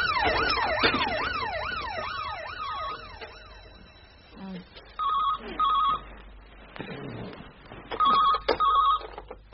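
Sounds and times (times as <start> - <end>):
telephone ringing: 0.2 - 6.1, 7.9 - 9.2.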